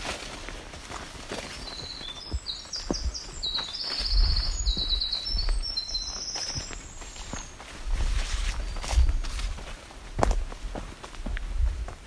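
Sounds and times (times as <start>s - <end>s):
footsteps on a forest trail: 0.0s - 12.0s
Winter Wren song: 1.5s - 9.2s.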